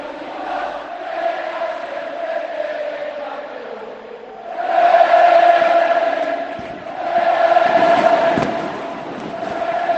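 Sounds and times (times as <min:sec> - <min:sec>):
huge crowd of football fans singing club anthem a cappella in stadium: 0:00.0 - 0:09.9
fireworks banging and crackling: 0:06.5 - 0:09.9.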